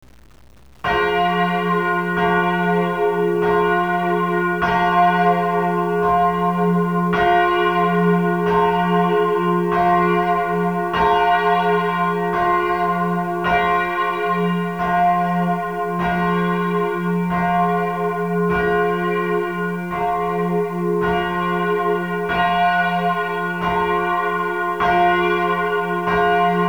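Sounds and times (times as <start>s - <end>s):
church bell ringing: 0.9s - 26.6s.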